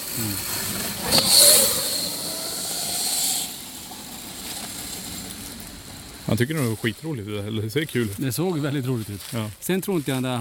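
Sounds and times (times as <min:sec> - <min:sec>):
motorcycle roaring past with high engine whine: 0:00.0 - 0:06.3
speech: 0:00.2 - 0:00.5, 0:06.3 - 0:10.4.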